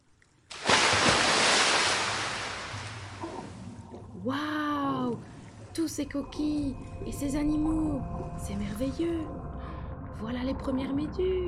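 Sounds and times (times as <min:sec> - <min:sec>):
person diving into water: 0:00.5 - 0:04.1
speech: 0:05.8 - 0:09.4, 0:10.2 - 0:11.4.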